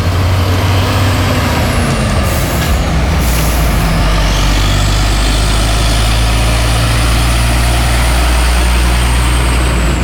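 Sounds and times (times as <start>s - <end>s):
cars and trucks idling in stopped traffic at a bend near Bukit Ngeroto: 0.0s - 10.0s
truck engine whining as it pulls away: 0.0s - 10.0s
air brakes hissing: 2.2s - 8.8s.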